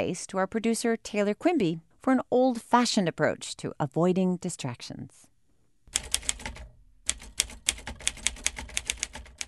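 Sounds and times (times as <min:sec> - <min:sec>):
speech: 0:00.0 - 0:05.3
manual typewriter keys clacking: 0:05.9 - 0:09.4.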